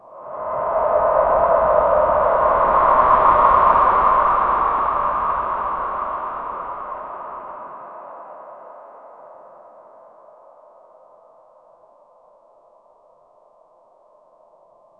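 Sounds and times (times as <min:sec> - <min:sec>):
whispering wind: 0:00.0 - 0:08.3.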